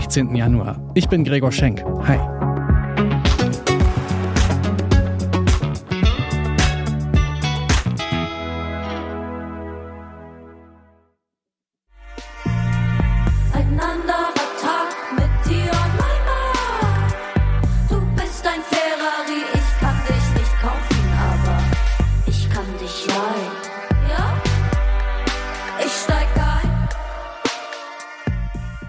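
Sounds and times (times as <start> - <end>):
speech: 0.1 - 2.4
German pop song about love: 2.6 - 8.1, 12.2 - 28.8.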